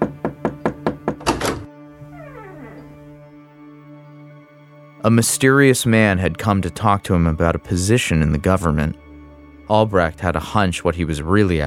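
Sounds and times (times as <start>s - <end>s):
firm knocking on a door: 0.0s - 1.6s
speech: 5.0s - 9.0s, 9.7s - 11.6s.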